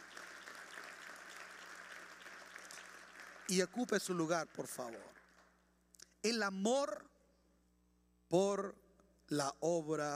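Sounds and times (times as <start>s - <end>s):
audience applauding: 0.0s - 5.5s
speech: 3.5s - 5.2s, 6.2s - 7.1s, 8.3s - 10.1s.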